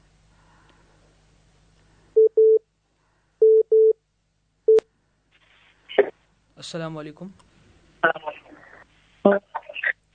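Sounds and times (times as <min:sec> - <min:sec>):
telephone line beeps as a phone-in call connects: 0:02.2 - 0:02.6, 0:03.4 - 0:04.0
speech: 0:06.0 - 0:08.3, 0:09.2 - 0:09.5.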